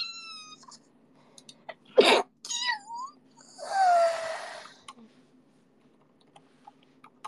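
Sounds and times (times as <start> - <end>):
person sneezing: 2.0 - 2.3
breathy wheeze: 3.4 - 5.0.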